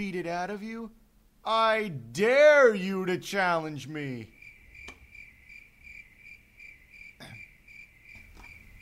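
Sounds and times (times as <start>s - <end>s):
speech: 0.0s - 4.4s
crickets chirping in a rapid pulsing trill: 3.5s - 8.7s.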